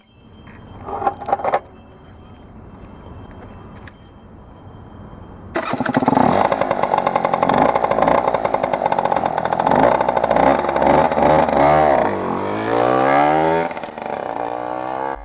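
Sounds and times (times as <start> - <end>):
moped or motorcycle engine starting and revving: 5.6 - 15.2.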